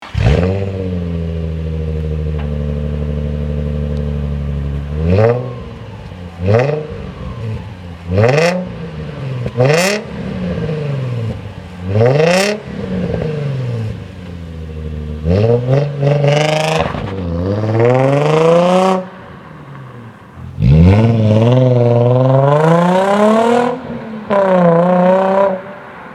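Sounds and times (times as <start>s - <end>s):
Nissan 350Z engine: 0.0s - 26.1s.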